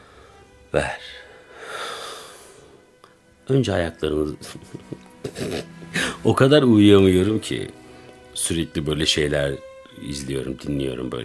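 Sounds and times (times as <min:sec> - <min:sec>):
speech: 0:00.7 - 0:01.2, 0:03.5 - 0:07.8, 0:08.4 - 0:11.2
deep exhale during a guided relaxation breathing exercise: 0:01.2 - 0:02.8
laughter: 0:04.4 - 0:06.2.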